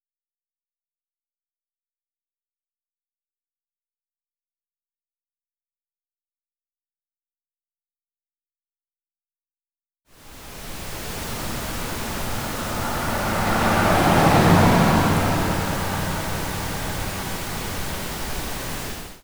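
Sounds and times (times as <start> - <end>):
car passing: 10.2 - 19.2.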